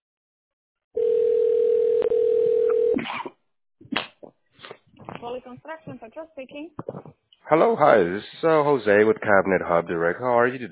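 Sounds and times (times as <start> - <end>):
telephone ringing tone while a call is transferred: 1.0 - 3.0
speech: 5.2 - 10.6.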